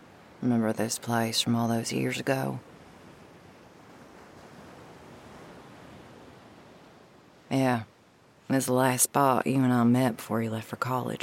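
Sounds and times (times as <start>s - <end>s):
faint breezy hiss: 0.0s - 11.2s
ocean surf washing onto a sandy beach: 0.0s - 11.2s
speech: 0.4s - 2.7s, 8.6s - 11.2s.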